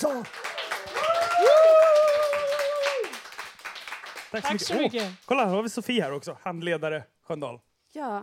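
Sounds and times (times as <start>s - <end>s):
speech: 0.0s - 0.5s, 4.3s - 8.2s
room full of people applauding: 0.0s - 5.5s.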